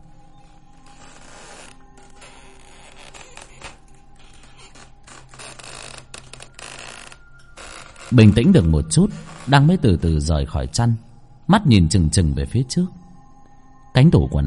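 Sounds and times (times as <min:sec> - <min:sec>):
creaking grinding sound with crackling bursts: 0:00.0 - 0:10.4
speech: 0:08.1 - 0:13.0, 0:14.0 - 0:14.4.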